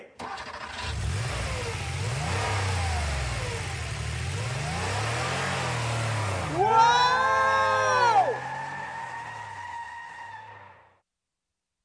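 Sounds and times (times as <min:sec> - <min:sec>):
bus engine revving and accelerating: 0:00.3 - 0:10.9.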